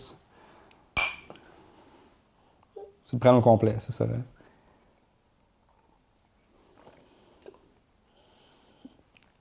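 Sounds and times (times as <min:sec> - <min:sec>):
glasses of Scotch clinking in a toast: 0:01.0 - 0:01.4
speech: 0:03.1 - 0:04.4.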